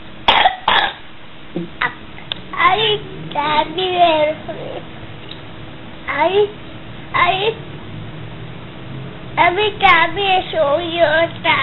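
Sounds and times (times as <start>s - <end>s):
person coughing: 0.3s - 1.0s
speech: 1.6s - 1.9s, 2.8s - 4.9s, 6.1s - 6.6s, 9.4s - 11.6s.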